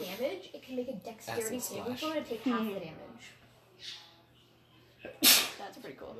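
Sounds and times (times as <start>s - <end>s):
speech: 0.2s - 4.0s, 5.0s - 6.1s
person sneezing: 5.1s - 5.6s.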